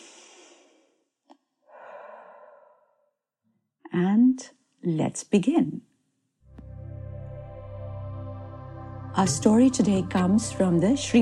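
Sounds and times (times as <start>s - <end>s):
deep human breath: 1.6s - 3.1s
speech: 4.0s - 5.9s, 9.2s - 11.2s.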